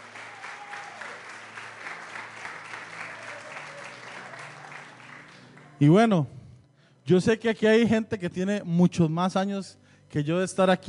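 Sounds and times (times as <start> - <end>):
congregation applauding: 0.0 - 5.8
speech: 5.8 - 6.4, 7.1 - 10.8.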